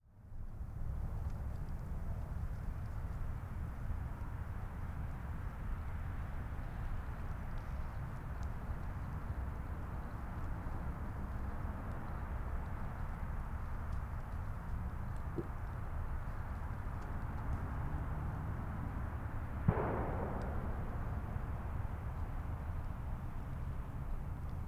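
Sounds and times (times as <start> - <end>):
exterior ambience of an empty open field: 0.1 - 24.6
distant gunshot: 19.6 - 23.6.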